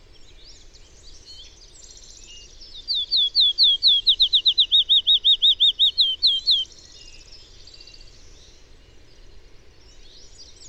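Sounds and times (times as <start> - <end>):
faint background hiss: 0.0 - 10.6
bird song of clear high slurred whistled notes: 1.2 - 6.7.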